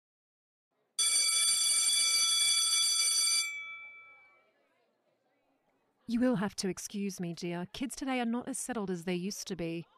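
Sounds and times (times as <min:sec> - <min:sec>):
school bell ringing at a girls high school in Surrey Hills: 0:01.0 - 0:04.3
speech: 0:06.1 - 0:09.9.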